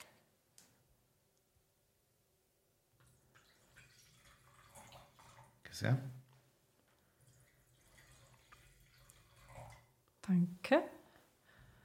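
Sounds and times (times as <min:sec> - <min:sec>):
white wine being poured into a glass: 0:03.3 - 0:05.6, 0:07.3 - 0:09.9
speech: 0:05.8 - 0:06.2, 0:10.4 - 0:11.0.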